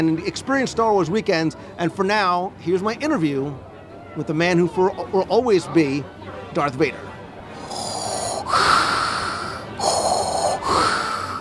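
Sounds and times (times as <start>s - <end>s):
speech: 0.0s - 7.1s
raspy wheezing breaths: 7.5s - 11.4s.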